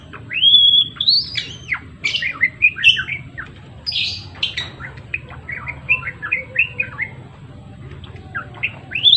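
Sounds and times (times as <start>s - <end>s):
Java sparrow song of sharp chirps, clicking tinkling notes and sliding whistles: 0.0s - 7.2s, 8.3s - 9.1s
steady low hum: 0.0s - 9.1s.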